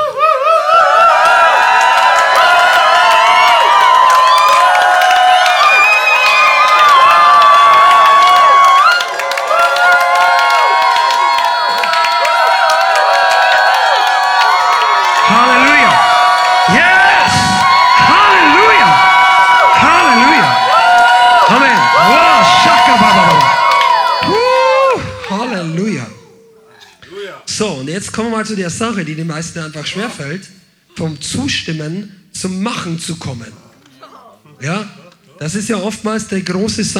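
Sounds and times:
congregation cheering and shouting in a practice round of rejoicing: 0.0 - 26.7
speech: 28.2 - 33.6, 34.6 - 36.9.

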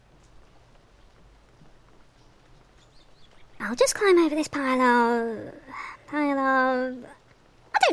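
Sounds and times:
faint scattered ticks: 0.0 - 3.6
light rain pattering on surfaces: 0.0 - 7.9
speech: 3.6 - 7.2.

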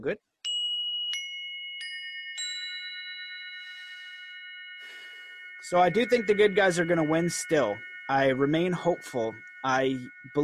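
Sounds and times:
speech: 0.0 - 0.3, 5.6 - 10.4
bright metallic chimes ringing: 0.4 - 10.4.

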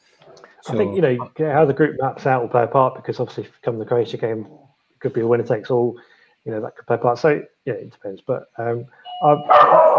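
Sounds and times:
speech: 0.7 - 9.9
faint doorbell chime: 9.0 - 9.7
dog barking loudly: 9.5 - 9.9.

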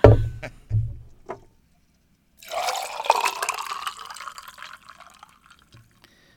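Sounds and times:
dull clunks and knocks: 0.0 - 1.5
cocktail being poured from a bucket: 2.4 - 6.0.

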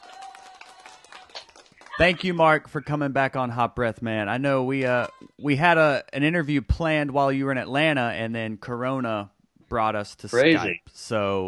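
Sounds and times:
round of applause: 0.0 - 2.6
speech: 2.0 - 11.4.

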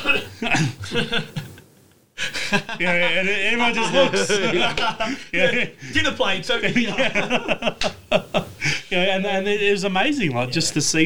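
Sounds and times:
person imitating coughing: 0.0 - 1.6
laughter: 0.2 - 1.6, 2.2 - 8.9
speech: 0.4 - 1.4, 2.5 - 11.0.

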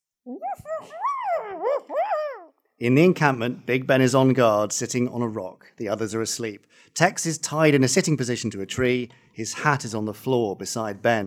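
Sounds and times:
little dog muffled bark and whiny yelp: 0.3 - 2.5
speech: 2.8 - 11.2.

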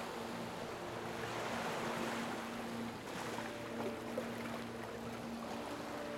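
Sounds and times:
ocean waves washing onto the shore: 0.0 - 6.1.

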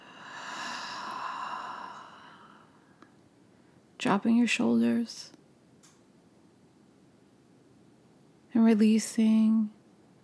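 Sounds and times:
deep exhale after filling the lungs: 0.0 - 3.0
speech: 4.0 - 5.4, 8.6 - 9.8.

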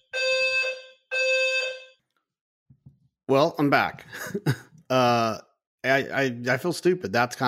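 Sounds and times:
fire alarm buzzing: 0.0 - 2.1
speech: 3.3 - 7.4.

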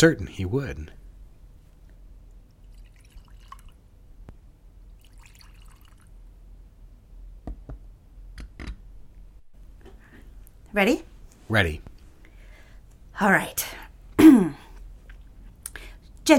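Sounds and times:
speech: 0.0 - 1.0, 10.8 - 11.9, 13.2 - 14.6
liquid drips: 2.3 - 3.8, 5.0 - 6.2
liquid pouring into glasses: 2.5 - 3.8, 4.9 - 6.2.

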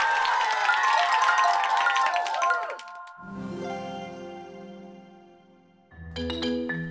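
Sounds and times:
crowd clapping and cheering: 0.0 - 3.3
sustained electronic musical chords: 3.2 - 6.8.

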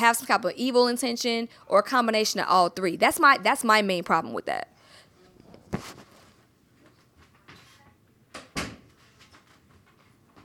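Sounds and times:
speech: 0.0 - 4.8
door bumping shut: 8.4 - 8.9.

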